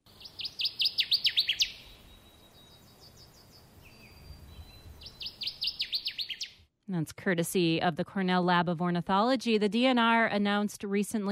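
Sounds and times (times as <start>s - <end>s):
male Connecticut warbler singing: 0.0s - 6.6s
speech: 6.9s - 11.3s.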